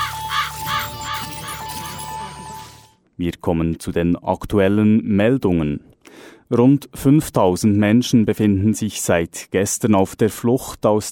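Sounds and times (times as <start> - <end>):
raven cawing in a radio station jingle: 0.0 - 1.4
sustained musical tone in a radio station jingle: 0.0 - 3.0
speech: 3.2 - 11.0.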